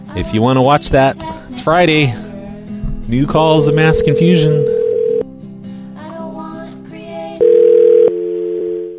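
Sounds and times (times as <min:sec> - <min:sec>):
speech: 0:00.2 - 0:02.2, 0:03.1 - 0:04.8
telephone dial tone: 0:03.7 - 0:05.2, 0:07.4 - 0:08.9.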